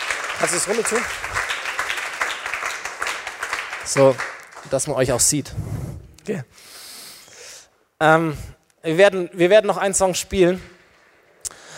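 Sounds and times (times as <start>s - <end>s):
crowd applauding for a band: 0.0s - 5.3s
speech: 0.4s - 1.5s, 3.9s - 6.8s, 8.0s - 10.7s.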